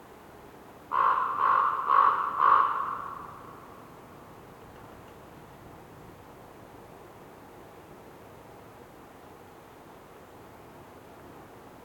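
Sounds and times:
raven croaking in a winter forest in North Laurentian Woods, Canada: 0.9s - 3.8s.

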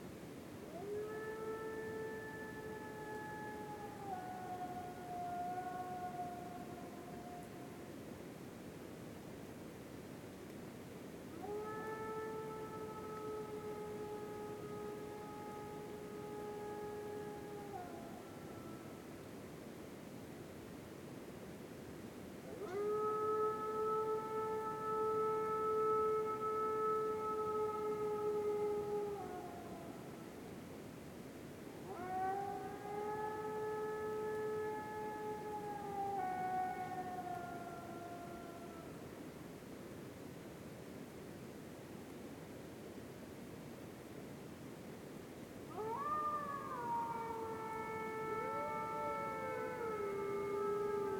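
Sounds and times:
distant wolves howling in a winter forest at night in North Laurentian Woods Canada: 0.7s - 7.9s, 11.3s - 19.4s, 22.4s - 30.6s, 31.6s - 39.2s, 45.6s - 51.1s.

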